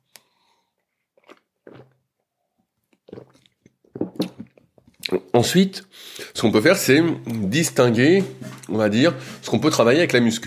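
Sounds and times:
person sipping a drink: 0.1s - 2.1s, 2.9s - 5.3s
wet mouth sounds and swallows: 0.9s - 2.0s, 2.9s - 5.3s
speech: 5.3s - 10.4s.

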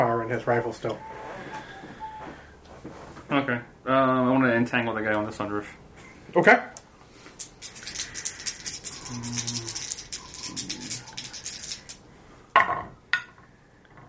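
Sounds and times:
speech: 0.0s - 1.7s, 2.8s - 6.8s, 9.1s - 9.8s
dice rattling and tumbling in a dice tray during a tabletop game: 7.4s - 12.0s.

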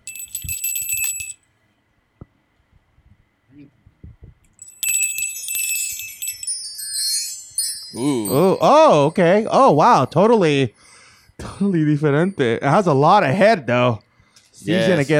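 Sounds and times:
small bell ringing rapidly to signal the next round: 0.0s - 1.4s, 4.6s - 10.1s
speech: 3.6s - 3.8s, 8.0s - 10.9s, 11.6s - 14.0s, 14.6s - 15.1s.

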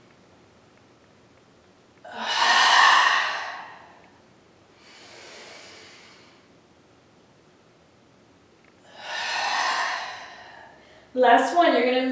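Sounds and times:
deep breathing with an open throat during a workout: 2.1s - 6.5s, 8.8s - 11.2s
speech: 11.2s - 12.1s.

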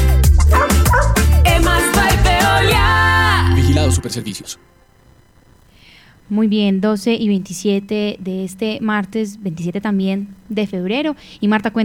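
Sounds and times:
busy loud musical backing: 0.0s - 4.7s
dog barking and yipping: 0.5s - 1.3s
speech: 4.0s - 4.8s, 6.3s - 11.8s.

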